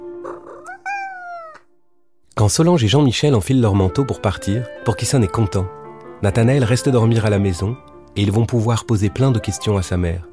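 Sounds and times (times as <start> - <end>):
cat meowing: 0.2 - 1.7
speech: 2.4 - 10.3.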